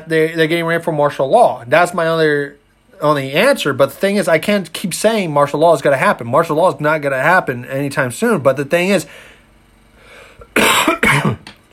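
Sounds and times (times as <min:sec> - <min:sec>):
speech: 0:00.0 - 0:09.3
person coughing harshly: 0:10.4 - 0:11.6.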